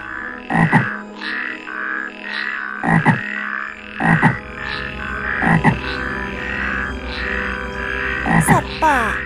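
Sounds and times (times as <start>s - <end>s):
dense chorus of many frogs croaking loudly: 0.0s - 9.2s
speech: 0.6s - 0.9s.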